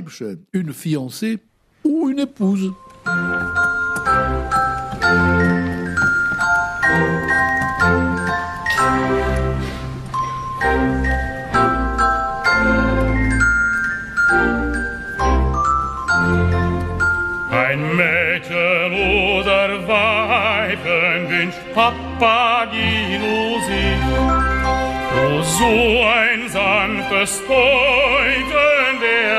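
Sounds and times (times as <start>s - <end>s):
speech: 0.1s - 5.5s, 21.4s - 24.4s, 25.4s - 29.3s
instrumental accompaniment: 2.4s - 29.3s
glockenspiel playing a cheerful tune: 2.7s - 17.7s.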